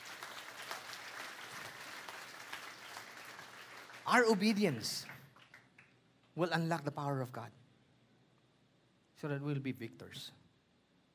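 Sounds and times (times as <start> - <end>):
church audience applauding as a clap offering: 0.0 - 6.3
speech: 4.1 - 5.1, 6.4 - 7.6, 9.2 - 10.4.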